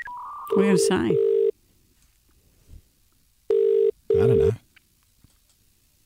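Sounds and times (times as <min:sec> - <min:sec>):
steady electronic phone ringing tone: 0:00.0 - 0:01.5, 0:03.5 - 0:04.5
speech: 0:00.5 - 0:01.3.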